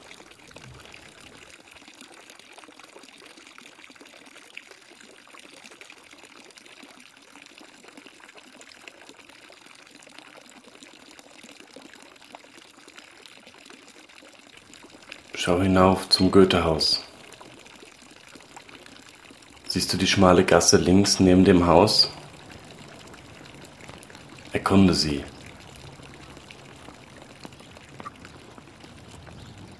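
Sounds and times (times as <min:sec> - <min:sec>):
bright splashing stream of water pouring from a fountain: 0:00.0 - 0:29.7
speech: 0:15.4 - 0:17.0, 0:19.7 - 0:22.2, 0:24.7 - 0:25.4.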